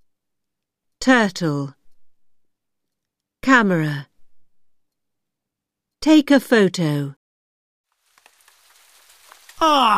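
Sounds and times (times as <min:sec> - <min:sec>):
speech: 0:01.0 - 0:01.8, 0:03.5 - 0:04.1, 0:06.0 - 0:07.2, 0:09.6 - 0:09.9
rain falling: 0:07.9 - 0:09.9.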